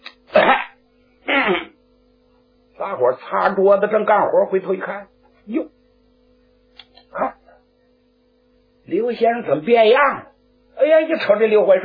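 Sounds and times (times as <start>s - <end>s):
faint steady hum: 0.0s - 11.8s
man coughing as he walks in through a door: 0.3s - 1.8s, 7.1s - 7.6s
speech: 1.5s - 1.7s, 2.9s - 5.8s, 7.2s - 7.4s, 8.9s - 11.8s.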